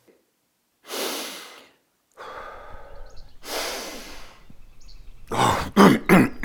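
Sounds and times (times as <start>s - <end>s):
deep heavy breathing: 2.2s - 6.4s.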